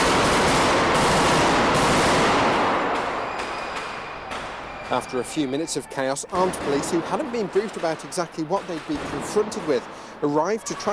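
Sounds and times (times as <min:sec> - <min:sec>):
rapid gunfire during simulated terrorist attack: 0:00.0 - 0:04.5, 0:06.4 - 0:10.2
speech: 0:04.9 - 0:10.9.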